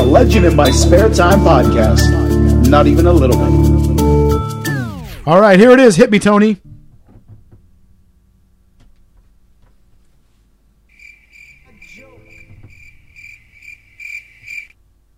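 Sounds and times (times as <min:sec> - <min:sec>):
speech: 0:00.2 - 0:03.8, 0:05.3 - 0:06.7
crickets chirping: 0:10.9 - 0:14.8.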